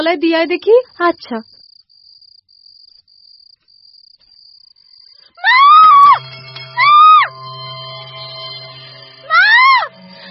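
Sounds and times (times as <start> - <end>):
speech: 0.0 - 1.5
girl screaming outside in the courtyard: 5.4 - 6.2, 6.8 - 7.3, 9.3 - 9.9.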